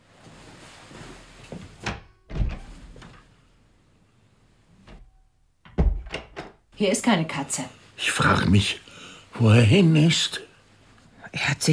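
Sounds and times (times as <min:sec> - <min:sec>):
door opening and closing inside a house: 0:01.6 - 0:03.3, 0:04.8 - 0:06.6
speech: 0:06.8 - 0:08.8, 0:09.4 - 0:10.5, 0:11.3 - 0:11.7.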